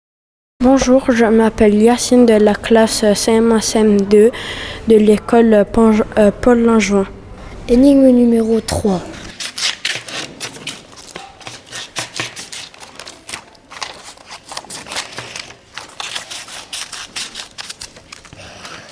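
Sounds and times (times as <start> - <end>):
speech: 0.6 - 9.2
scissors cutting sheets of paper: 9.3 - 18.8.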